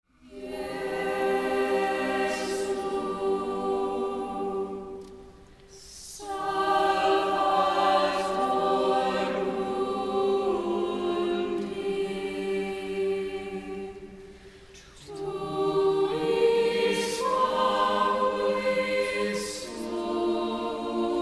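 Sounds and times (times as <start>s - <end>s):
mostly teen schola choir singing at a low mass: 0.1s - 21.1s.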